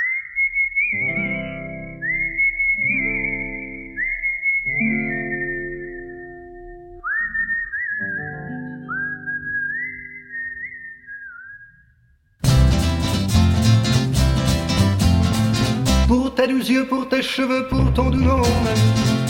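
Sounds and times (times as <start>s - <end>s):
whistled melody on a 1962 45 rpm vinyl single: 0.0s - 12.0s
full band playing a song on a 1962 vinyl single: 12.4s - 16.1s, 17.9s - 19.2s
speech: 16.7s - 19.2s.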